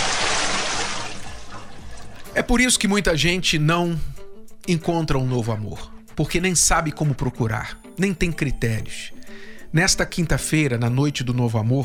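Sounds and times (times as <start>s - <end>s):
bucket of cold water being poured: 0.0s - 2.5s
speech: 2.4s - 11.8s.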